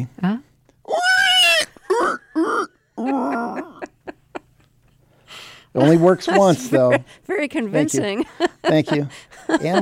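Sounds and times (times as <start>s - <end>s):
speech: 0.0s - 0.5s, 5.8s - 9.7s
person from Nebraska imitating a pig's squeal: 0.9s - 3.8s
laughter: 1.9s - 5.0s, 5.8s - 7.1s, 7.7s - 9.7s.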